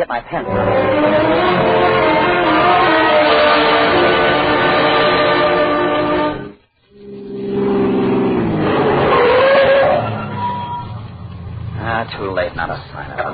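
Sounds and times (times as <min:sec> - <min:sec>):
speech: 0:00.0 - 0:01.4
car engine starting and roaring: 0:00.3 - 0:13.3.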